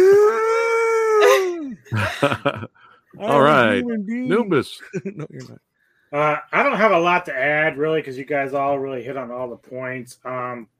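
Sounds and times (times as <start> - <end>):
person imitating a howl: 0.0 - 1.8
laughter: 1.9 - 3.8, 4.7 - 5.5
speech: 2.2 - 10.7.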